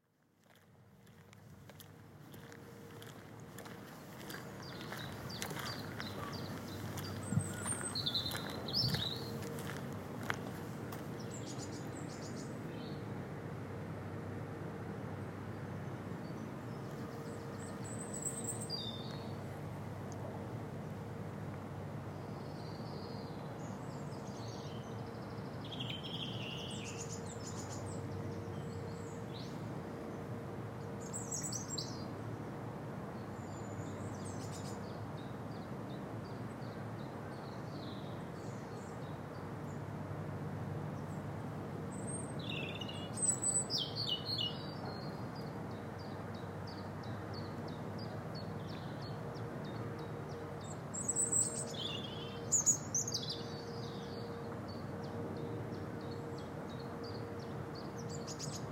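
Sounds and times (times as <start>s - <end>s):
wetlands soundscape: 0.4s - 58.7s.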